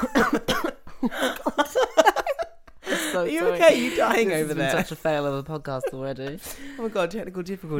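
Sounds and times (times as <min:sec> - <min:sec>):
harsh raspy coughing: 0:00.0 - 0:01.4
laughter: 0:00.0 - 0:05.0
speech: 0:03.4 - 0:07.7.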